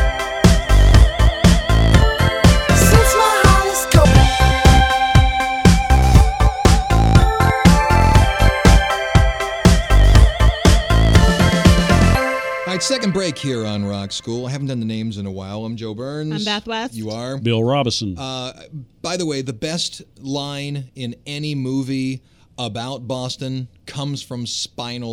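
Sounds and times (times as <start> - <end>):
indie electropop band song with synths and driving beat: 0.0 - 14.2
speech: 13.2 - 25.1.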